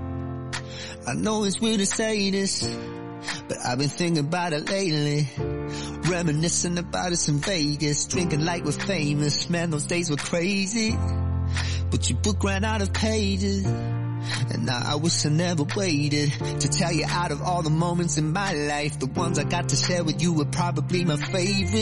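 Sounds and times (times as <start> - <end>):
pop song with lead singer: 0.0 - 21.8
speech: 0.8 - 21.8.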